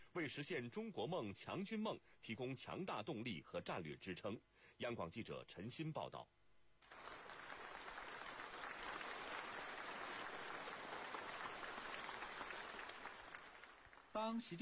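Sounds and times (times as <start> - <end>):
speech: 0.2 - 7.0, 14.2 - 14.6
warm applause from a large audience in a meeting hall: 6.8 - 14.2.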